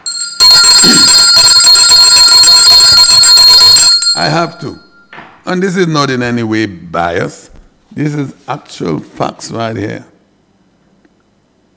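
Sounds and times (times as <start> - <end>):
bright metallic hand bell ringing: 0.0 - 5.1
speech: 4.2 - 4.9, 5.5 - 7.4, 8.0 - 10.1.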